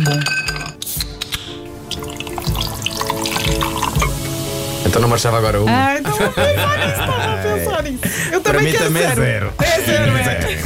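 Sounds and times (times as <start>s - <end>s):
speech: 0.1s - 0.4s, 4.9s - 10.6s
carbonated drink pouring into a glass: 1.7s - 5.3s
laughter: 5.9s - 8.9s.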